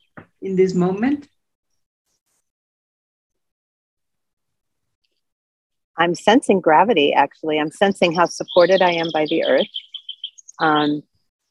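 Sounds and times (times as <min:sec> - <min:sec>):
speech: 0:00.4 - 0:01.3, 0:06.0 - 0:09.9, 0:10.6 - 0:11.1
bird chirping in a tree: 0:07.2 - 0:11.1.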